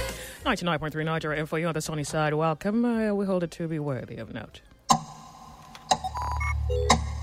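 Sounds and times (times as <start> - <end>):
speech: 0.5 - 5.1, 6.7 - 7.1
clock ticking: 4.9 - 7.2.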